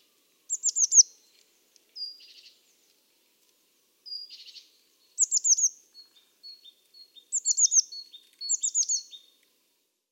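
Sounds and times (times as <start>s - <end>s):
Eurasian blue tit giving high notes and chirps: 0.5s - 1.1s, 4.1s - 9.3s.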